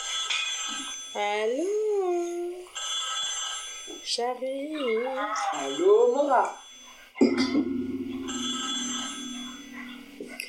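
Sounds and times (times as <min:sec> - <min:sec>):
telephone bell ringing: 0:00.0 - 0:01.6, 0:02.2 - 0:04.2, 0:04.8 - 0:10.2
speech: 0:01.2 - 0:02.4, 0:04.1 - 0:06.6, 0:07.2 - 0:07.8.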